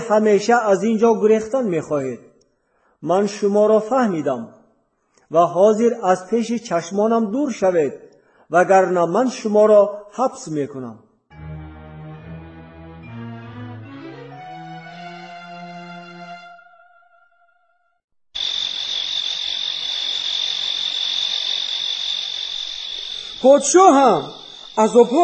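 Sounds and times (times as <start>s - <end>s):
speech: 0.1s - 2.3s, 3.0s - 4.6s, 5.3s - 11.0s, 23.4s - 25.2s
swarm of locusts buzzing: 18.4s - 25.1s.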